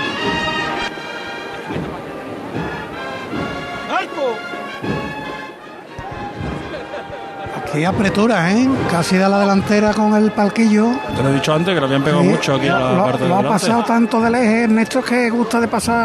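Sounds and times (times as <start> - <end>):
dense murmuring outdoor crowd in a sunny plaza: 0.0 - 16.0
hammer knocker of a procession float carrying a Dolorosa image: 1.7 - 3.9, 4.8 - 5.4, 6.0 - 10.0
laughter: 6.0 - 8.9, 12.2 - 14.3
speech: 7.8 - 16.0.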